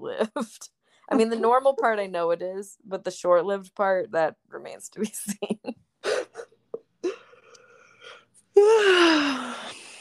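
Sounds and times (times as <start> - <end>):
speech: 0.0 - 6.2, 8.6 - 9.7
person yawning: 8.0 - 9.9.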